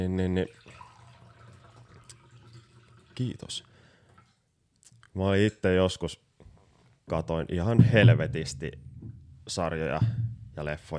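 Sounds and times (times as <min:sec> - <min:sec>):
speech: 0:00.0 - 0:00.6, 0:03.2 - 0:03.7, 0:05.2 - 0:06.2, 0:07.1 - 0:10.9
water trickling into a glass: 0:00.4 - 0:03.6.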